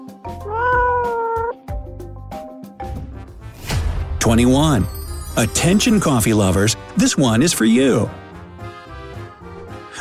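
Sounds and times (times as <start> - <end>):
cat wailing meow like a crying baby: 0.3 - 1.7
speech: 4.2 - 8.2.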